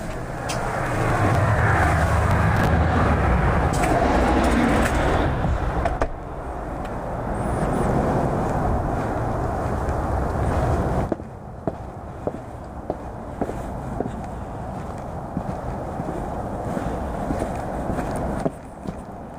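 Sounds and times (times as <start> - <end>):
car rumble: 0.0 - 19.3
traffic: 0.0 - 19.3
shuffling footsteps: 7.6 - 19.3.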